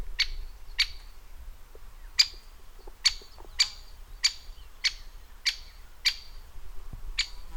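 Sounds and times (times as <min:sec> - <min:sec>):
Great spotted woodpecker kik calls: 0:00.2 - 0:01.2, 0:01.8 - 0:06.4, 0:07.2 - 0:07.5.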